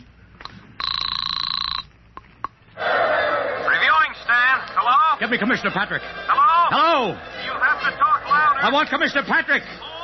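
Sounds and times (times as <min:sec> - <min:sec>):
field telephone on a parade reviewing stand ringing: 0:00.8 - 0:02.0
laughter: 0:03.2 - 0:10.0
speech: 0:05.2 - 0:10.0.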